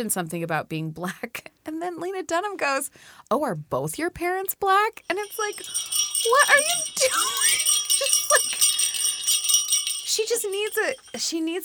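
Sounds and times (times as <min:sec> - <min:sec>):
speech: 0:00.0 - 0:08.2, 0:10.2 - 0:11.6
bright jingle bells ringing: 0:05.0 - 0:11.6.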